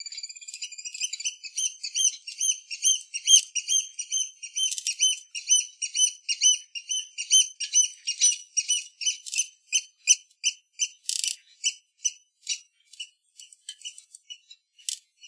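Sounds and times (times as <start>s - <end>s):
bird: 0.0s - 15.2s.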